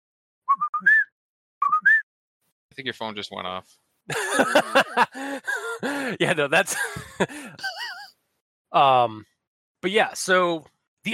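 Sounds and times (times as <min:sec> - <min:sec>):
person whistling an imitation of a whippoorwill call: 0:00.5 - 0:02.0
speech: 0:02.8 - 0:07.8, 0:08.7 - 0:11.1
laughter: 0:04.1 - 0:08.1.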